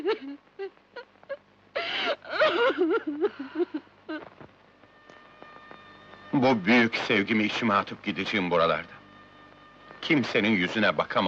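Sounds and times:
person crying and whimpering: 0.0 - 4.3
person sobbing and wailing: 0.0 - 4.3
speech: 6.4 - 9.0, 10.1 - 11.2.

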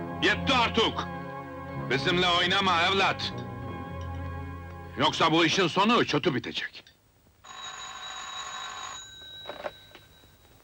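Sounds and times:
speech: 0.2 - 1.2, 1.9 - 3.4, 5.0 - 6.9
telephone ringing in a house with electronic trill: 7.4 - 10.6.

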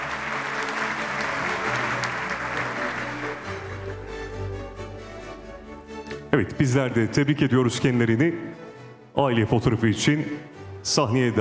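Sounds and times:
audience applause at an award ceremony: 0.0 - 4.0
speech: 6.3 - 8.6, 9.2 - 11.3.

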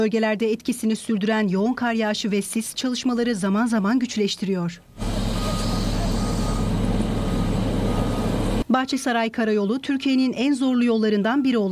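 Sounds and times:
speech: 0.0 - 5.1, 8.7 - 11.7
faint reversing beep: 5.0 - 8.6
heavy work machines clearing snow from a mountain highway in Türkiye: 5.0 - 8.6.

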